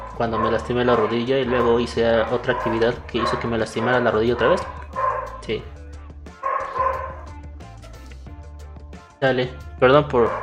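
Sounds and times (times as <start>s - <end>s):
dog yipping: 0.0s - 5.5s, 6.4s - 7.3s, 10.2s - 10.4s
dogs barking: 0.0s - 7.4s, 10.2s - 10.4s
speech: 0.2s - 5.8s, 9.2s - 10.4s.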